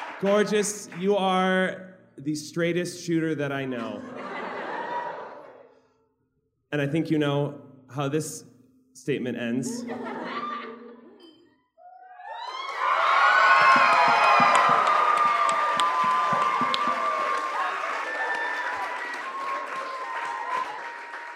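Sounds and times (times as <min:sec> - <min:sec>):
audience cheering, whooping and applauding: 0:00.0 - 0:01.0, 0:12.1 - 0:21.3
speech: 0:00.2 - 0:04.3, 0:06.7 - 0:10.5
laughter: 0:03.7 - 0:05.7, 0:09.8 - 0:11.2.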